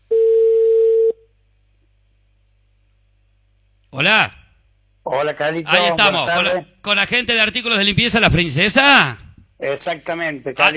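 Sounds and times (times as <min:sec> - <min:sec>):
telephone ringing tone while a call is placed: 0:00.1 - 0:01.2
speech: 0:04.0 - 0:04.4, 0:05.1 - 0:10.7.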